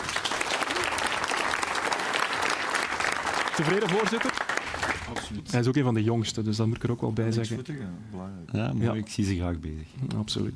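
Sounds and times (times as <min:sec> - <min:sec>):
audience applause: 0:00.0 - 0:05.3
speech: 0:03.6 - 0:04.5, 0:05.1 - 0:10.5.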